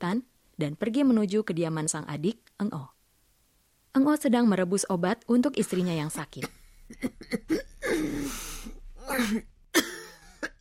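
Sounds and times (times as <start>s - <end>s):
speech: 0.0s - 3.0s, 3.9s - 9.9s
short dry coughs: 5.7s - 8.3s, 9.0s - 10.6s
strained wheezing breaths: 8.0s - 8.8s.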